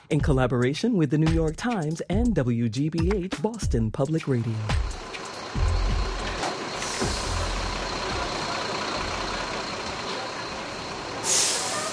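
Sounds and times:
speech: 0.1s - 5.0s
bus engines idling with low drone: 4.2s - 11.9s
steady outdoor traffic: 4.3s - 11.9s
bus air brakes hissing: 5.0s - 11.9s.

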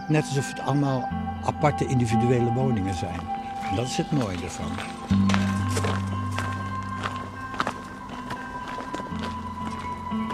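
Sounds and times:
speech: 0.1s - 5.3s
footsteps walking on a footpath: 3.0s - 10.3s.

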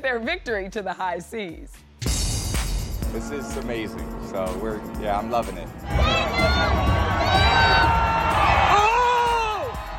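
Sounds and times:
speech: 0.0s - 1.9s, 3.1s - 7.8s
large outdoor parade crowd cheering and shouting: 5.8s - 9.9s
girl's drawn-out high-pitched yell: 6.0s - 8.0s.

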